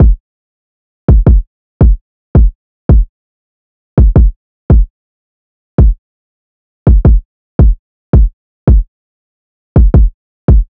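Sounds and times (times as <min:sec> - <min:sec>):
166 BPM trap drum loop with kick: 0:00.0 - 0:00.2, 0:01.1 - 0:03.1, 0:04.0 - 0:04.9, 0:05.8 - 0:06.0, 0:06.9 - 0:08.8, 0:09.8 - 0:10.6.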